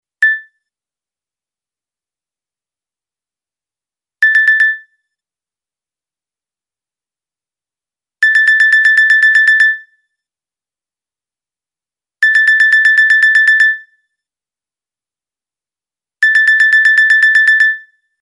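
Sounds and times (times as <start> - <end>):
clock alarm: 4.2 - 4.9, 8.2 - 9.9, 12.2 - 13.9, 16.2 - 18.0.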